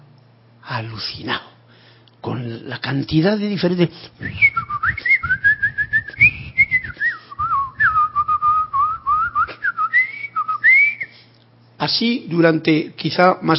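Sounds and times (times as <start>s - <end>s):
speech: 0.7s - 1.5s, 2.2s - 5.1s, 11.9s - 13.5s
person whistling in imitation of a blackbird's song: 4.3s - 11.1s.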